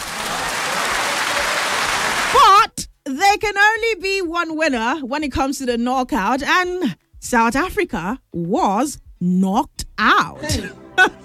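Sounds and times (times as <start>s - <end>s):
crowd applauding a football team: 0.0s - 2.4s
speech: 2.7s - 11.2s.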